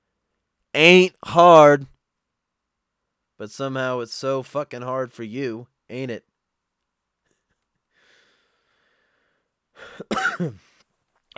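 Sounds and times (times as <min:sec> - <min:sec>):
speech: 0:00.7 - 0:01.9, 0:03.4 - 0:06.3, 0:09.8 - 0:10.7
husky cough: 0:09.8 - 0:10.7.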